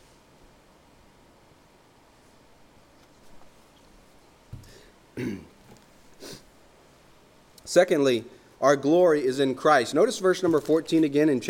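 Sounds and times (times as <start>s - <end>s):
preacher clearing throat during a sermon: 5.2s - 5.6s
preacher coughing during a sermon: 5.2s - 5.6s
speech: 7.7s - 11.4s.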